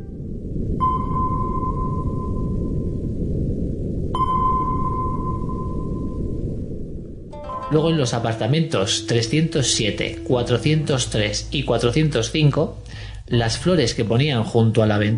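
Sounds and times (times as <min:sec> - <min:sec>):
steady low rumbling background: 0:00.0 - 0:15.1
sonar pings: 0:00.8 - 0:03.1, 0:04.1 - 0:06.4
speech: 0:07.7 - 0:15.1.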